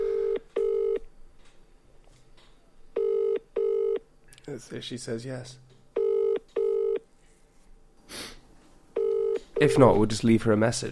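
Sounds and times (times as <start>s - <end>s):
outgoing call's ringback tone: 0.0s - 1.0s, 3.0s - 4.0s, 6.0s - 7.0s, 9.0s - 10.0s
speech: 4.6s - 5.7s, 9.6s - 10.8s.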